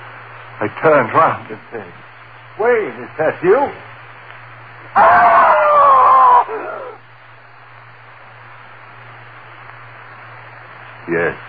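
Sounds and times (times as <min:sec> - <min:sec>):
low hum: 0:00.0 - 0:11.4
speech: 0:00.6 - 0:03.9, 0:04.9 - 0:05.7, 0:11.1 - 0:11.4
woman screaming: 0:05.0 - 0:07.0.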